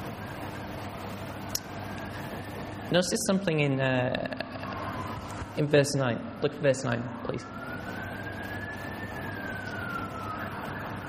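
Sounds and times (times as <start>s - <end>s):
ambulance siren: 0.0s - 11.0s
speech: 2.9s - 4.4s, 5.6s - 7.6s.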